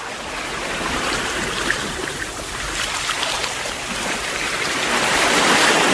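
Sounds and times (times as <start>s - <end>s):
ocean waves with rushing water and hiss of surf: 0.0s - 5.9s.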